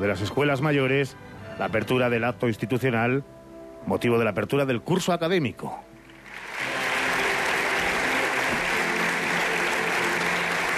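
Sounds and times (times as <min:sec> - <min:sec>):
speech: 0:00.0 - 0:05.9
applause in a university assembly hall: 0:06.2 - 0:10.7.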